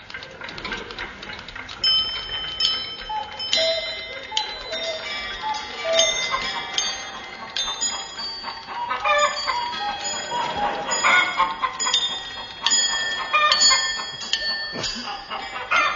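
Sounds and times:
many clocks ticking in a clock repairer's shop: 0.0 - 15.9
bright clock bell chimes in a clock repairer's shop: 1.9 - 15.9.

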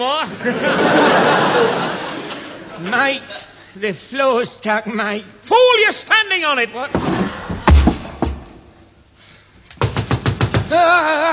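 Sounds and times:
speech: 0.0 - 1.8, 2.8 - 7.2
laughter: 0.3 - 3.6, 10.7 - 11.3
knocking on a door: 9.8 - 10.7.

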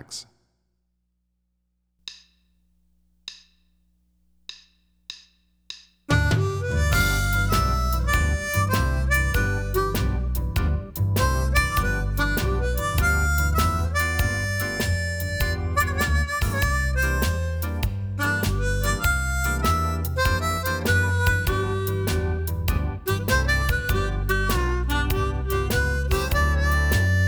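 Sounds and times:
twelve-bar blues solo on harmonica: 6.1 - 27.2.

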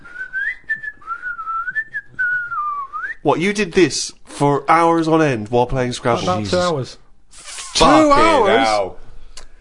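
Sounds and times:
person whistling a short wandering tune: 0.0 - 3.2
speech: 3.2 - 7.0, 7.8 - 9.0.

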